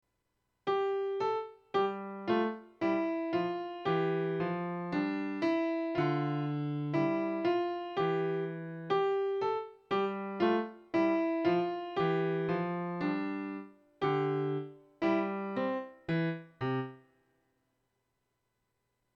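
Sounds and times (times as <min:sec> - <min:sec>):
canon melody: 0:00.7 - 0:17.0.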